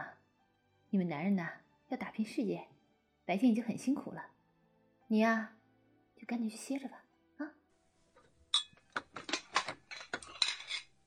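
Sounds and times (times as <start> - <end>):
speech: 0.9 - 2.7, 3.3 - 4.4, 5.1 - 5.6, 6.2 - 7.6
ceramic bowls and wooden chopsticks clinking as they're gathered for washing: 8.5 - 11.0.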